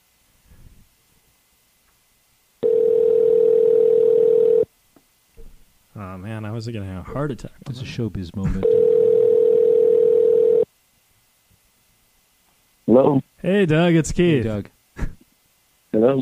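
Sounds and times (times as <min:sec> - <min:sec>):
telephone ringback tone from a call placed on a cell phone: 0:02.6 - 0:04.7, 0:08.6 - 0:10.7
speech: 0:06.1 - 0:09.0, 0:13.0 - 0:14.8, 0:16.0 - 0:16.1.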